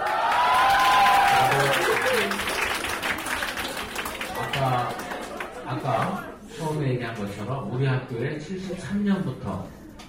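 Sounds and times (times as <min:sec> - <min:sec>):
girls' high school students cheering in a school auditorium: 0:00.0 - 0:02.4
students clapping in a school auditorium: 0:00.0 - 0:06.1
speech: 0:07.5 - 0:09.8.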